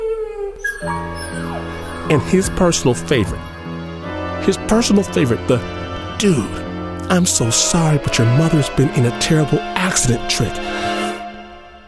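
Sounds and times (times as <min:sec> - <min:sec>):
dog howling and whimpering: 0:00.0 - 0:02.2
speech: 0:00.8 - 0:03.5, 0:04.4 - 0:11.0.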